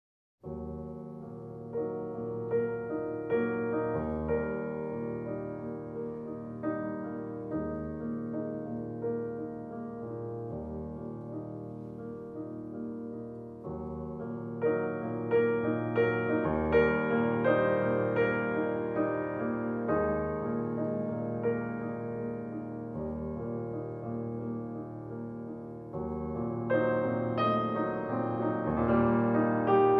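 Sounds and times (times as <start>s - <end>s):
cello and piano sonata andante movement: 0.6s - 29.9s.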